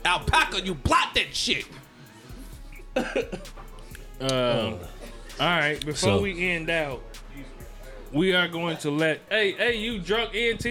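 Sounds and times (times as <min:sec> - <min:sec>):
speech: 0:00.1 - 0:01.8, 0:03.0 - 0:03.6, 0:04.2 - 0:07.5, 0:08.1 - 0:10.6
laughter: 0:02.7 - 0:03.7
person coughing: 0:02.8 - 0:03.5.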